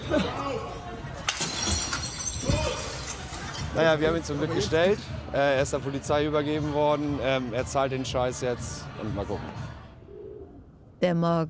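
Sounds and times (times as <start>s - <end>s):
speech: 0.1s - 0.4s, 3.8s - 9.6s, 11.0s - 11.4s
glass shattering: 1.2s - 3.8s.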